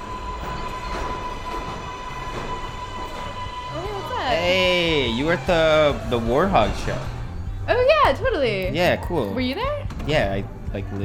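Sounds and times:
subway car in motion rumbling at night: 0.0s - 8.0s
speech: 4.3s - 7.1s, 7.7s - 11.0s.

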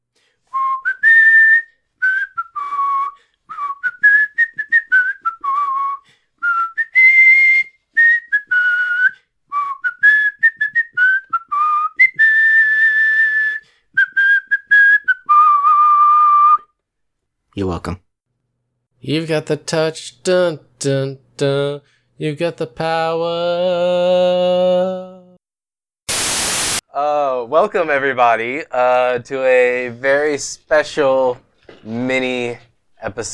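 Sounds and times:
person whistling a lively theme song tune: 0.5s - 16.7s
speech: 17.6s - 18.0s, 19.0s - 25.1s, 27.5s - 33.3s.

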